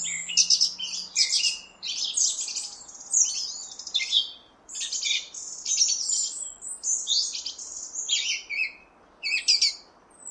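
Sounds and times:
faint steady background hiss: 0.0 - 10.3
song thrush singing squeaky and trilled phrases: 0.0 - 10.3.

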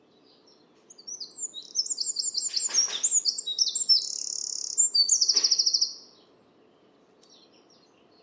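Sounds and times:
bird calls of high thin whistles, sliding notes and rapid trill: 1.0 - 6.0.

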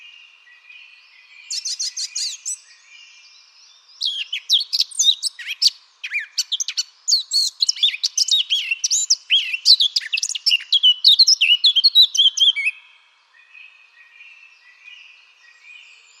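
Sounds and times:
Eurasian blackcap singing: 1.2 - 12.8.

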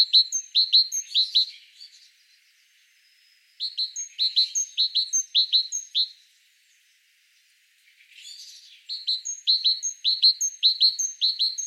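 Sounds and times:
great tit calling with bright paired chirps: 0.0 - 1.9, 3.6 - 6.2, 8.3 - 11.6.

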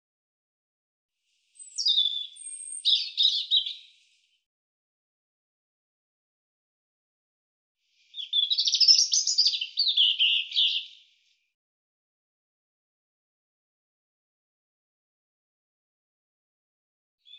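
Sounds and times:
European robin song of thin high tumbling warbles and trills: 1.4 - 4.4, 7.9 - 11.4.

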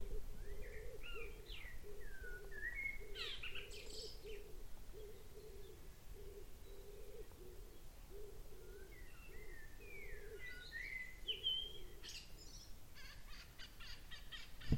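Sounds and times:
faint background noise: 0.0 - 14.7
bird chirps: 0.4 - 7.9, 8.6 - 14.7.

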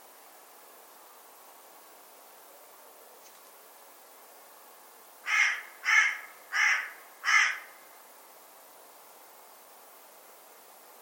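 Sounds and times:
faint background hiss: 0.0 - 10.9
bird giving harsh hoarse caws: 5.2 - 7.8.

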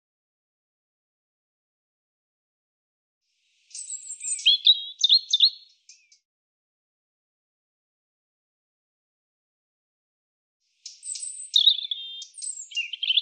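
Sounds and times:
European robin singing: 3.5 - 6.2, 10.7 - 13.2.

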